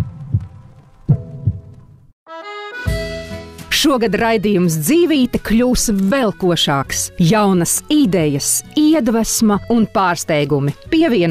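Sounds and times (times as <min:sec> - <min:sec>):
heartbeat thuds: 0:00.0 - 0:02.1
speech: 0:03.8 - 0:11.2.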